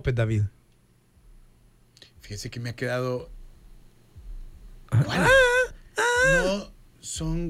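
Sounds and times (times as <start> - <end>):
speech: 0.0 - 0.6, 2.3 - 3.4, 4.9 - 5.5, 6.2 - 7.4
faint low hum: 0.0 - 7.4
woman's high wavering wailing vocal in a song: 5.0 - 6.7.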